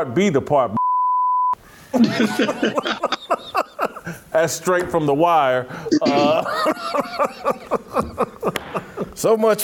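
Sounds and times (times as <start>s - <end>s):
speech: 0.0s - 0.8s, 1.9s - 3.6s, 4.4s - 9.6s
loud censor bleep tone over profanity: 0.8s - 1.6s
laughter: 2.0s - 4.3s, 5.9s - 9.3s
man talking animatedly: 4.3s - 6.4s, 9.2s - 9.6s.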